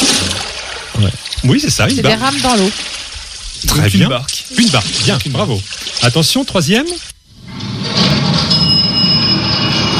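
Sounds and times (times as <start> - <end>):
speech: 1.0 - 3.0, 3.6 - 7.1
elevator running with mechanical rumble and high-pitched whine: 7.4 - 9.9.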